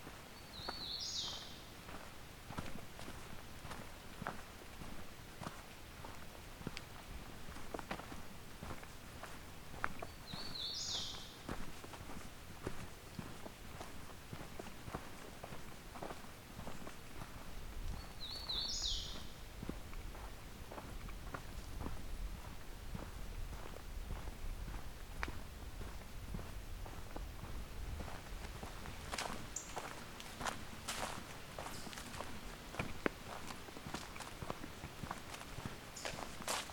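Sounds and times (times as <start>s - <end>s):
crunching footsteps of someone walking: 0.0s - 36.7s
hooded warbler singing: 0.4s - 1.7s, 10.0s - 11.4s, 17.9s - 19.4s.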